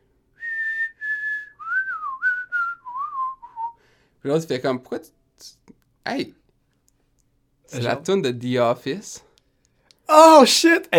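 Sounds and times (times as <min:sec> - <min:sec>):
cameraman whistling a TV show theme tune on a music video shoot: 0:00.4 - 0:03.8
speech: 0:04.2 - 0:06.4, 0:07.7 - 0:09.3, 0:10.1 - 0:10.9.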